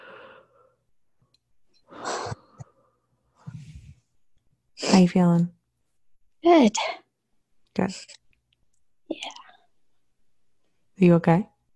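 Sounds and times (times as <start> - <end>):
deep breath during a guided relaxation exercise: 0.0 - 0.8, 1.8 - 4.1
speech: 4.9 - 5.6, 6.4 - 7.0, 7.8 - 8.2, 11.0 - 11.5.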